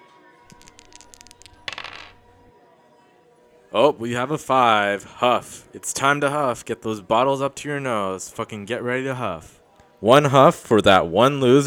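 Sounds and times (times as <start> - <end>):
dice clattering across a hard surface: 0.5 - 2.5
speech: 3.7 - 11.6.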